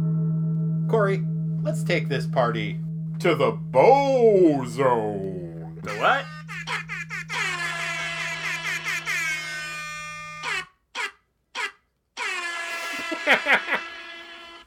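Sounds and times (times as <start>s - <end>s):
speech: 0.9s - 6.4s
laughter: 4.1s - 10.0s, 12.6s - 14.6s
loud brassy air horn blasts: 5.9s - 14.6s.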